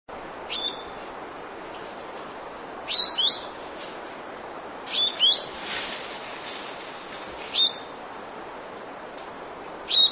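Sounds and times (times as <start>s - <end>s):
steady hiss: 0.1s - 10.0s
brown vermilion bird chirps and twitters: 0.5s - 1.0s, 2.9s - 3.6s, 4.9s - 5.5s, 7.5s - 7.9s, 9.9s - 10.1s.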